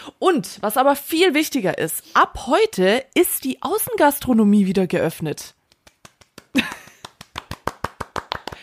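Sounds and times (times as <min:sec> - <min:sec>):
speech: 0:00.2 - 0:05.6
hands clapping: 0:05.7 - 0:08.6.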